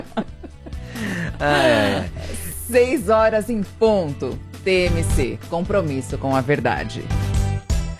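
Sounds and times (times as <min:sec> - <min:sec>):
person yawning: 0:01.0 - 0:02.2
speech: 0:01.4 - 0:02.1, 0:02.7 - 0:07.2.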